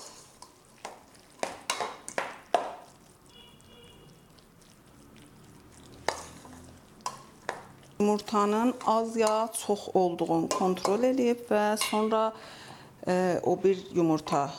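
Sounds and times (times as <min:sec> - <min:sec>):
spoon stirring and mixing ingredients in a bowl: 0:00.0 - 0:04.0, 0:05.7 - 0:12.2
speech: 0:08.0 - 0:14.5.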